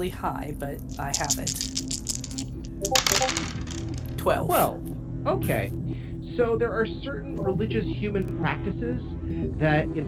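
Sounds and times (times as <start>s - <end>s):
speech: 0.0s - 10.0s
dice clattering across a hard surface: 0.8s - 4.2s.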